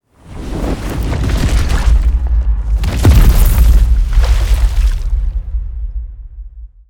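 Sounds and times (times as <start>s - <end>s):
giant monster falling: 0.9s - 5.8s.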